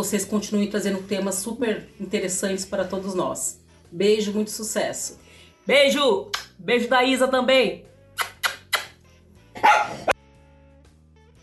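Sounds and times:
speech: 0.0s - 8.3s
dog barking with sharp yips and a rough bark: 9.6s - 10.2s.

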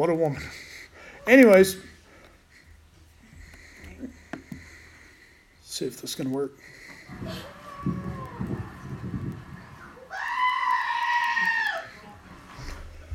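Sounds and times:
speech: 0.0s - 1.9s, 5.8s - 8.5s
low murmuring noise: 0.3s - 10.5s, 11.3s - 13.1s
goat screaming: 7.1s - 11.9s.

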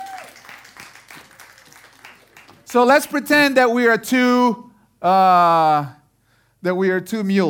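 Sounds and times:
crowd applauding: 0.0s - 3.2s
speech: 2.7s - 6.0s, 6.6s - 7.4s.

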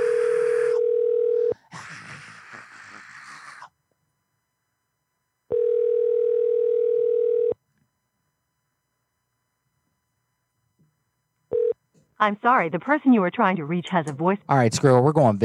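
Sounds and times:
steady dial-style telephone tone of an unanswered call: 0.0s - 1.6s, 5.5s - 7.6s, 11.5s - 11.8s
speech: 12.2s - 15.4s.

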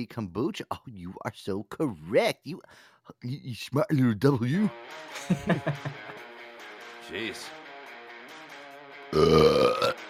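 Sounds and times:
speech: 0.0s - 6.3s, 7.1s - 7.6s, 9.1s - 10.0s
laughter: 5.1s - 6.3s
low rumbling burp: 9.1s - 10.0s.

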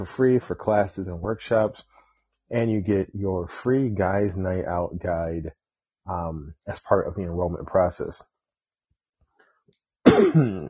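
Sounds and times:
speech: 0.0s - 1.9s, 2.5s - 8.3s, 10.1s - 10.6s
person with allergies coughing: 10.0s - 10.6s.

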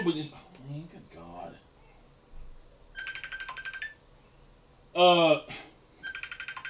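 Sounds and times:
speech: 0.0s - 1.0s, 5.0s - 5.6s
phone ringtone with trilling electronic pulses: 3.0s - 4.0s, 6.0s - 6.6s.

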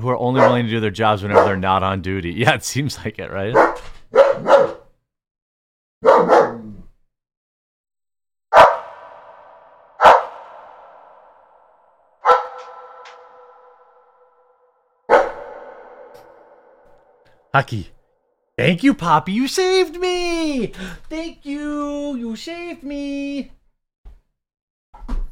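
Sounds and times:
speech: 0.0s - 3.9s, 17.6s - 18.0s, 18.6s - 23.6s
male dog barking: 0.4s - 0.6s, 1.3s - 1.6s, 3.5s - 4.9s, 6.0s - 6.8s, 8.5s - 9.2s, 10.0s - 10.5s, 12.2s - 14.2s, 15.1s - 17.0s.

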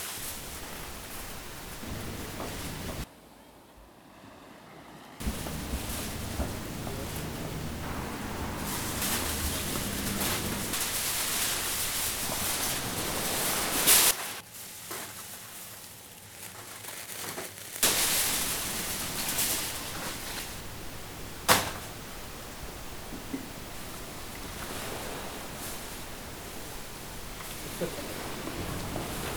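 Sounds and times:
dense bright hissing rush: 0.2s - 3.1s, 5.2s - 14.4s, 17.9s - 29.3s.

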